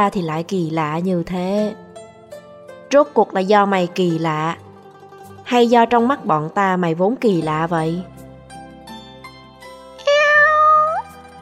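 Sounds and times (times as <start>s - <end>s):
speech: 0.0s - 1.8s, 2.9s - 4.6s, 5.5s - 8.1s
black cat meowing: 10.0s - 11.2s.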